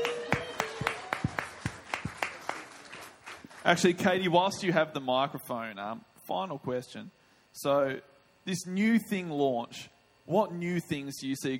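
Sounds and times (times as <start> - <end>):
audience applause: 0.0 - 3.9
speech: 3.6 - 11.5.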